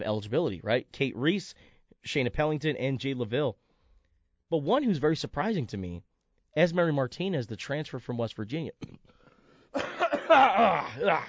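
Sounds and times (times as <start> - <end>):
speech: 0.0 - 3.6, 4.5 - 11.2
person clearing throat: 8.8 - 9.1, 9.8 - 11.2.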